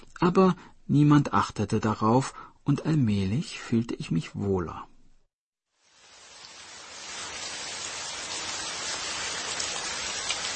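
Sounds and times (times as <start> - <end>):
speech: 0.2 - 4.9
steady dense rain shower: 5.7 - 10.5.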